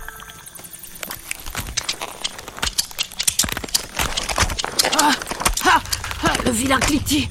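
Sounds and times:
scorpion legs scuttling: 0.9s - 7.1s
speech: 6.5s - 7.2s.

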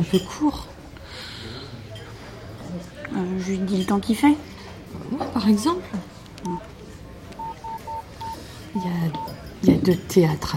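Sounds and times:
speech: 0.0s - 1.4s, 2.8s - 6.0s, 8.8s - 10.5s
phone keypad tones while typing a text message: 7.4s - 9.4s.

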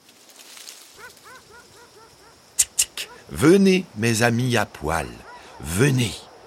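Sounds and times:
dog barking sharply: 1.0s - 2.4s, 3.0s - 3.3s, 5.1s - 5.7s
speech: 1.1s - 6.3s.

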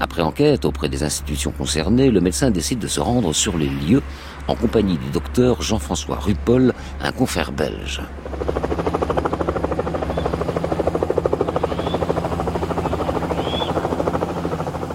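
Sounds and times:
helicopter rotor blades chopping over a low engine hum: 0.0s - 14.9s
speech: 0.2s - 8.8s.

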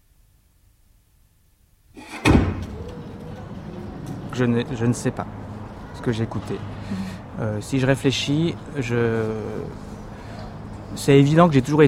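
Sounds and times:
door closing with a solid thud: 2.0s - 3.9s
steady murmur of ambient noise: 2.0s - 11.8s
speech: 4.4s - 5.4s, 6.0s - 9.9s, 10.9s - 11.8s.

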